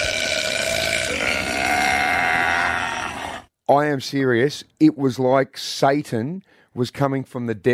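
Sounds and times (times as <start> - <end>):
person imitating a long loud burp: 0.0 - 3.5
speech: 3.7 - 7.7.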